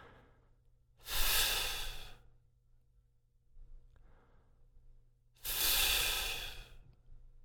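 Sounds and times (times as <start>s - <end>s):
slow breathing with F-like friction of lip against teeth: 1.0s - 2.3s, 5.4s - 6.8s.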